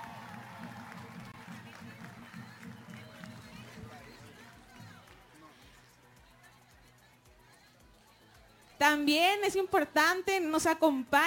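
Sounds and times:
audience applause from many hands: 0:00.0 - 0:07.0
speech: 0:08.8 - 0:11.2.

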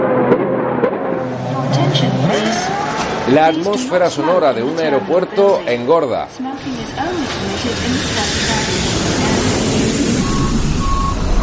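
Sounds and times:
Formula 1 race cars roaring at a race: 0:00.0 - 0:11.4
people's voices at a race: 0:01.5 - 0:09.7
speech: 0:02.0 - 0:09.4.

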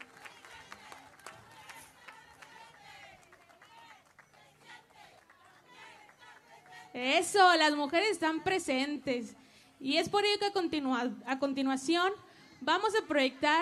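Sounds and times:
audience clapping for a senator: 0:00.0 - 0:06.9
crowd cheering: 0:00.0 - 0:07.0
speech: 0:07.0 - 0:13.5.

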